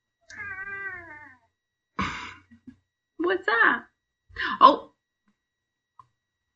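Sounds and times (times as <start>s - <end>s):
male cat meowing: 0.3s - 1.5s
speech: 3.3s - 4.8s.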